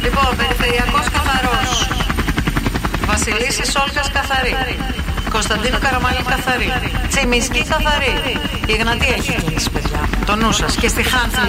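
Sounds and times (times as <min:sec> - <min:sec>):
helicopter rotor chopping: 0:00.0 - 0:11.4
helicopter whining tone: 0:00.0 - 0:11.4
speech: 0:03.3 - 0:11.4.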